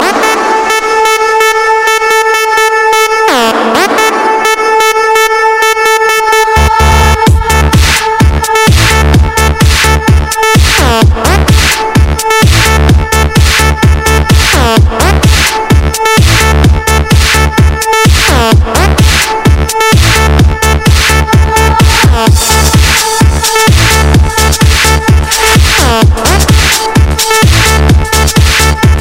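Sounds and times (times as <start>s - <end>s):
bass effect: 0.0s - 29.0s.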